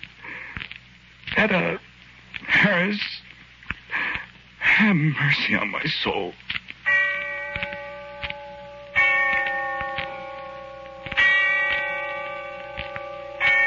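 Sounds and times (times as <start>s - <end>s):
speech: 1.4s - 3.2s, 4.8s - 6.4s
bell tolling in the distance: 6.9s - 13.6s.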